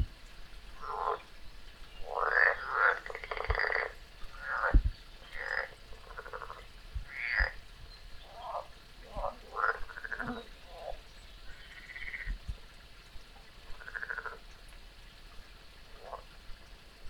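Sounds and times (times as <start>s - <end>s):
frog croaks: 0.8s - 1.3s, 2.0s - 7.6s, 8.2s - 12.4s, 13.7s - 14.4s, 15.9s - 16.3s.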